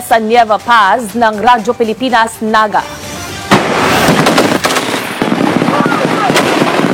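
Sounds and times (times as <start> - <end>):
dense noisy outdoor background: 0.0 - 6.9
speech: 0.1 - 3.0
live-fire gunfire bursts: 3.5 - 6.9.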